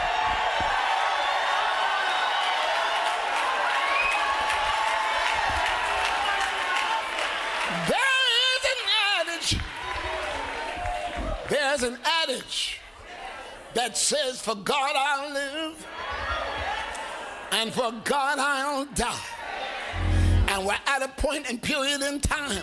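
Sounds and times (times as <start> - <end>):
large church audience cheering and shouting: 0.0 - 11.6, 15.7 - 17.8, 18.7 - 20.7
speech: 13.8 - 16.0, 17.6 - 19.3, 20.6 - 22.6.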